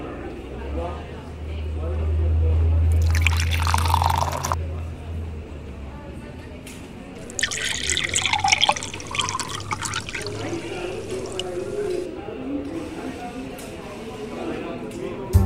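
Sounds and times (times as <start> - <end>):
faint voices: 0.0 - 15.3
water pouring in splashy bursts: 3.0 - 4.6, 7.2 - 12.0.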